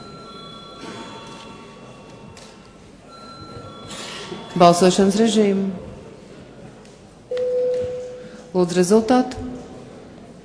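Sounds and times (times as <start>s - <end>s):
continuous electric parliamentary voting bell ringing: 0.0s - 2.1s, 3.1s - 5.6s
faint murmur: 0.0s - 10.4s
speech: 4.6s - 5.9s, 8.6s - 9.4s.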